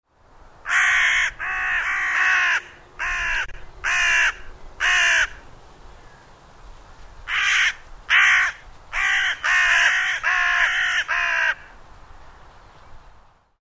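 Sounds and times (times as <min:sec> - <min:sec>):
carrion crow calling: 0:00.6 - 0:05.4, 0:07.2 - 0:11.8.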